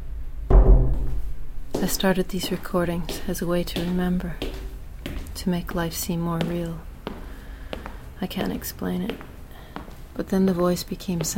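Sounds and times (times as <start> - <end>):
door shutting with a heavy thud: 0.5 - 1.4
speech: 1.8 - 4.6, 5.4 - 6.9, 8.2 - 9.3, 10.2 - 11.3.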